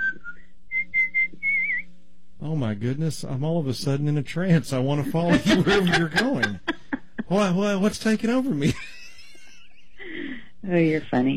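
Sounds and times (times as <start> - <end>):
person whistling a tune: 0.0 - 1.8
faint low hum: 0.0 - 11.3
speech: 2.4 - 6.7, 7.3 - 8.9, 10.7 - 11.3
laughter: 4.9 - 10.4.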